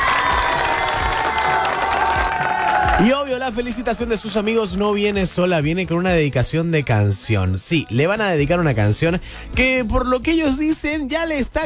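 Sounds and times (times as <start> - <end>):
audience applause: 0.0 - 3.4
audience cheering and whoops: 0.0 - 4.1
speech: 3.0 - 11.6.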